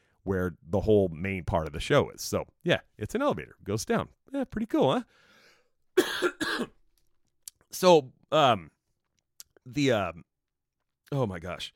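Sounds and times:
speech: 0.2s - 5.3s, 6.0s - 6.8s, 7.7s - 8.8s, 9.6s - 10.3s, 11.1s - 11.7s
harsh coughs: 6.0s - 6.8s.

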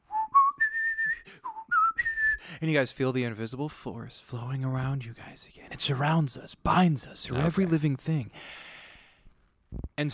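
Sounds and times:
man whistling a short melody from the centre of a pillar structure: 0.0s - 2.5s
speech: 2.5s - 8.7s, 10.0s - 10.1s.

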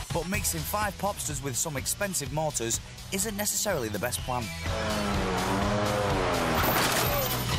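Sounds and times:
speech: 0.2s - 5.3s
test-driven car engines revving: 4.6s - 7.5s.

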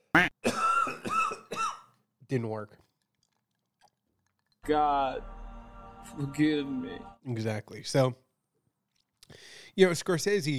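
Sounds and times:
person clearing throat with a strained voiced rasp: 0.2s - 1.9s
person coughing: 0.4s - 1.9s
speech: 2.3s - 2.8s, 4.7s - 5.4s, 6.0s - 8.2s, 9.3s - 10.5s.

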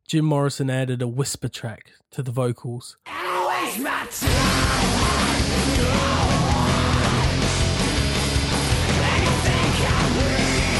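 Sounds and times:
speech: 0.1s - 5.2s
screamed vocal track at end of rock song: 3.0s - 7.5s, 9.0s - 10.7s
loud dense rock instrumentation: 4.2s - 10.7s.

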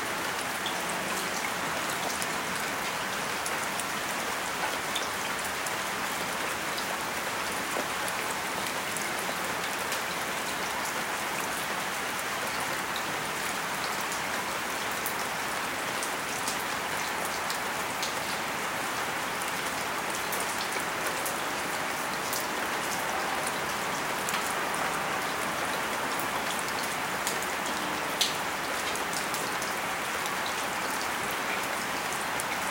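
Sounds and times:
steady rain in Los Angeles: 0.0s - 32.6s.

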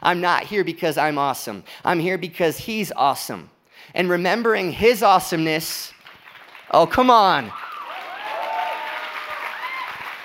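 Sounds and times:
speech: 0.0s - 6.0s, 6.7s - 7.6s
congregation clapping during a church sermon: 5.9s - 10.2s.

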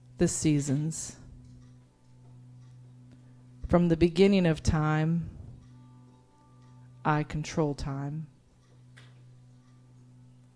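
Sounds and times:
clock ticking: 0.0s - 10.5s
steady low electrical hum: 0.0s - 10.5s
speech: 0.2s - 1.2s, 3.7s - 5.4s, 7.0s - 8.3s.

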